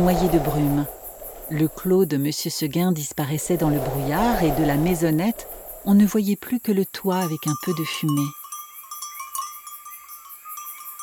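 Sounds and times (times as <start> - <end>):
speech: 0.0 - 8.4
bells of a herd of goats or sheep tinkling in misty mountain fields: 7.1 - 11.0.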